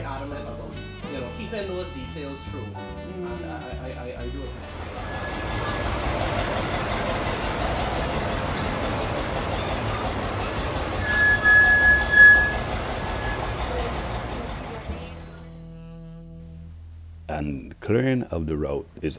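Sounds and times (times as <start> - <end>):
speech: 1.5 - 7.1, 17.4 - 19.1
train rolling along on a railway ride from St. Nicholas Abbey: 4.6 - 15.3.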